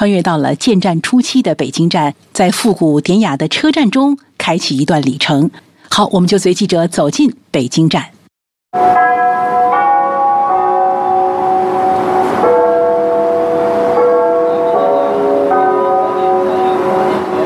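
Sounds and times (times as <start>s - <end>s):
speech: 0.0s - 9.5s
railway station clock tower bells ringing a slow melody: 8.8s - 17.4s
steady traffic noise: 8.8s - 17.4s.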